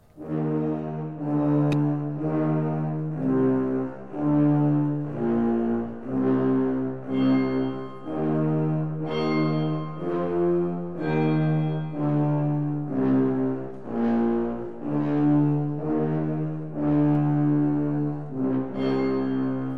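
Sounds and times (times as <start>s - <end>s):
low sustained orchestral drone: 0.0s - 19.7s
deep orchestral death bells tolling in a symphony: 6.4s - 12.9s, 18.0s - 19.7s.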